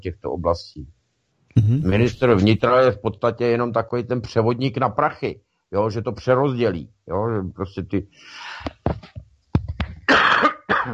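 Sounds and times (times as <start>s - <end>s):
speech: 0.0s - 9.1s
fit of coughing: 1.6s - 2.5s, 10.1s - 10.9s.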